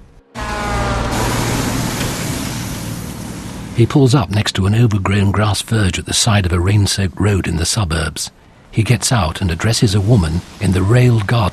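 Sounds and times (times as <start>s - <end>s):
big truck passing at a road junction: 0.0s - 5.1s
speech: 3.8s - 11.5s.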